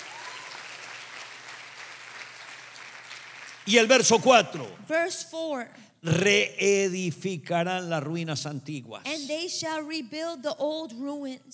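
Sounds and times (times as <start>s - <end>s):
audience applause: 0.0s - 4.8s
speech: 3.7s - 11.5s.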